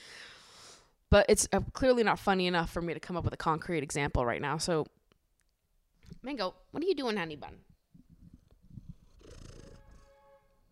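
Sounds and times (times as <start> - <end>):
speech: 1.1 - 5.0, 6.2 - 7.7
cat purring: 8.0 - 10.1.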